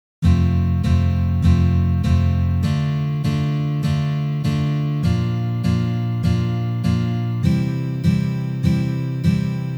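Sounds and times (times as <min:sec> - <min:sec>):
F major chord exercises played on guitar: 0:00.2 - 0:09.7.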